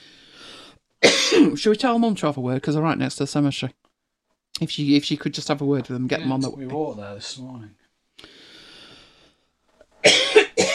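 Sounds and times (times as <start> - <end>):
person coughing: 1.0 - 1.6, 10.0 - 10.7
speech: 1.5 - 3.8, 4.6 - 8.4.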